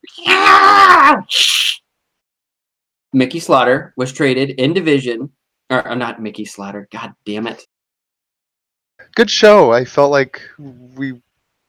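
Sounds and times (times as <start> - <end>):
cat yowling: 0.0 - 1.8
speech: 3.1 - 7.7, 9.2 - 11.6.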